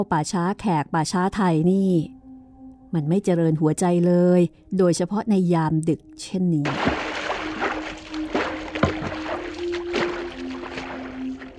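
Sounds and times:
speech: 0:00.0 - 0:02.2, 0:02.9 - 0:07.2
boat moving on water: 0:06.7 - 0:11.5.

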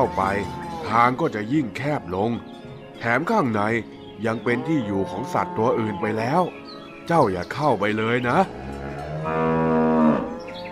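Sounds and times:
cow mooing: 0:00.0 - 0:01.0, 0:04.4 - 0:06.4, 0:08.4 - 0:10.6
speech: 0:00.0 - 0:09.6.

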